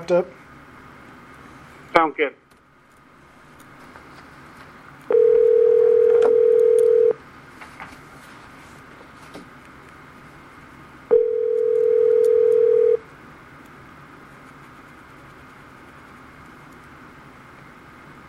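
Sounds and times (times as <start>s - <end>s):
speech: 0.1s - 0.4s, 1.9s - 2.4s
telephone call tones while phoning someone: 5.1s - 7.2s, 11.1s - 13.0s.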